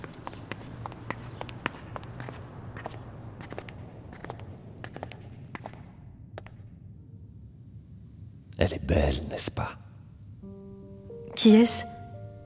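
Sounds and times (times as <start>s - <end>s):
footsteps going down stairs: 0.0s - 6.9s
low rumbling background: 0.0s - 12.4s
speech: 8.6s - 9.8s, 11.4s - 11.9s.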